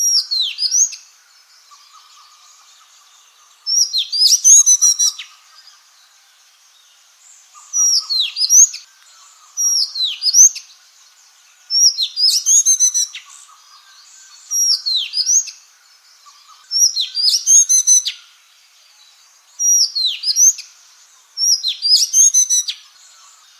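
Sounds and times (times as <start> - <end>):
quiet background noise: 0.0 - 23.5
Madagascar magpie-robin singing whistles and scratchy chirps: 3.6 - 5.4, 7.6 - 8.9, 9.6 - 10.7, 11.7 - 15.6, 16.2 - 18.2, 19.5 - 20.7, 21.4 - 23.5.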